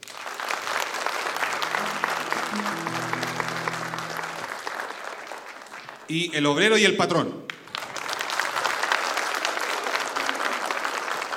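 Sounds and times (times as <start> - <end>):
audience applause at a contest final in Puente Alto: 0.0 - 6.0, 7.8 - 11.3
speech: 6.1 - 7.5.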